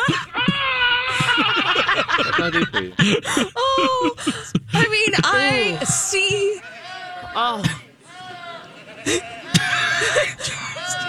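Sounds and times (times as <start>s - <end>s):
goats bleating: 0.0s - 1.8s, 4.8s - 11.0s
laughter: 0.0s - 11.0s
speech: 2.4s - 6.7s, 7.3s - 7.8s, 9.0s - 9.4s.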